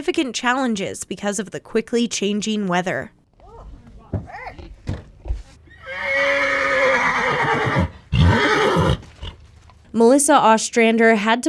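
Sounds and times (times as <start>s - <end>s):
speech: 0.0s - 3.2s, 10.0s - 11.4s
horse whinnying while being readied for a race: 5.7s - 9.4s.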